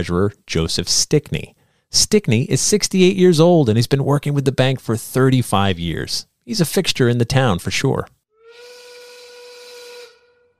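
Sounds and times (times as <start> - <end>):
speech: 0.0 - 8.2
factory steam whistle blowing at noon: 8.3 - 10.5.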